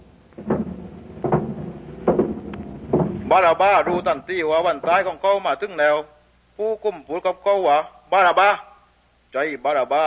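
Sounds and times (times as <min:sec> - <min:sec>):
heavy prison door clanking and scraping open: 0:00.4 - 0:05.1
speech: 0:03.3 - 0:08.7, 0:09.3 - 0:10.0.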